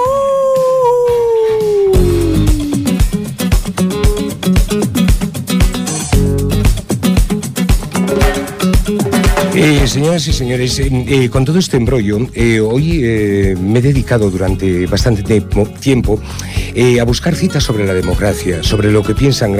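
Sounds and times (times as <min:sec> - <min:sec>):
werewolf howl: 0:00.0 - 0:02.9
driving beat-heavy music track: 0:01.6 - 0:19.5
speech: 0:10.0 - 0:19.5.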